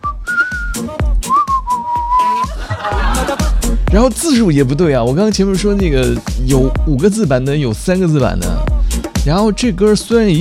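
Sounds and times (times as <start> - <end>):
whistled song tune melody: 0.0 - 3.4
steady thumping beat: 0.0 - 10.3
laughter: 2.2 - 3.8
speech: 3.9 - 10.3.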